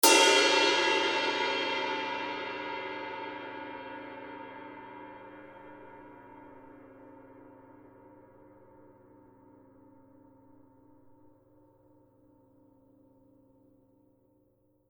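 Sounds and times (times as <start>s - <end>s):
22-inch dry heavy forged bronze ride cymbal edge: 0.0s - 5.0s.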